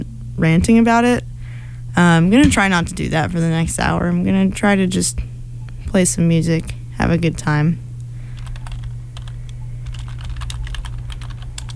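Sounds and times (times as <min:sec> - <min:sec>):
constant low electrical hum: 0:00.0 - 0:11.7
speech: 0:00.4 - 0:01.3, 0:02.0 - 0:05.3, 0:05.9 - 0:07.8
fingers typing on a computer keyboard: 0:08.4 - 0:11.7.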